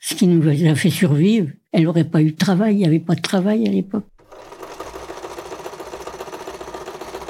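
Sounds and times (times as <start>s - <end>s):
speech: 0.1s - 4.1s
sewing machine running: 4.2s - 7.2s.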